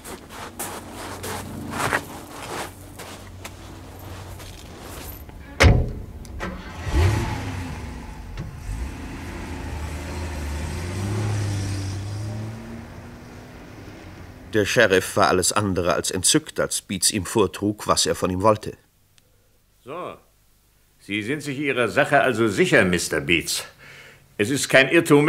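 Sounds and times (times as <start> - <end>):
car engine starting: 5.4 - 14.5
car door slamming: 5.5 - 7.1
speech: 14.5 - 18.8, 21.0 - 23.8, 24.4 - 25.2.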